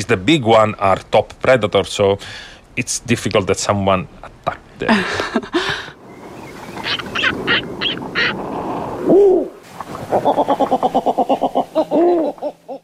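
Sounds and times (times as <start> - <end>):
speech: 0.1 - 5.8, 10.1 - 12.6
laughter: 4.4 - 5.9, 10.2 - 12.8
owl hooting: 6.0 - 9.6.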